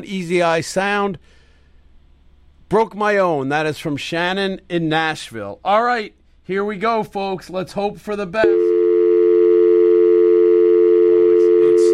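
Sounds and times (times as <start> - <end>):
speech: 0.0 - 1.4, 2.7 - 8.7
telephone line tone before a number is dialed: 8.4 - 11.9.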